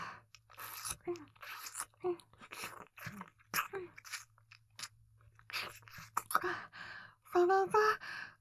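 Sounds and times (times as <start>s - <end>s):
wet mouth sounds of someone pretending to eat around ears: 0.3s - 6.4s
speech: 7.5s - 8.1s.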